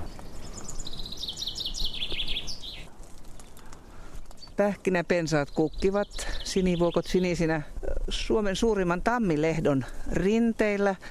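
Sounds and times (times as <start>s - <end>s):
common chaffinch singing: 0.0s - 2.9s, 4.2s - 11.1s
speech: 4.6s - 11.1s.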